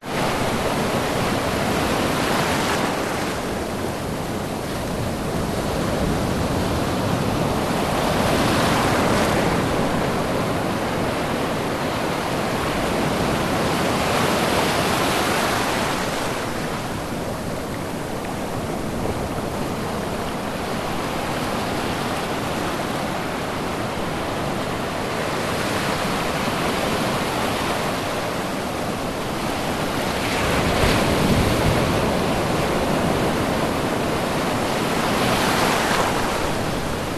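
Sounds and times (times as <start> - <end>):
ocean waves breaking at high tide on a sandy beach: 0.0 - 37.1.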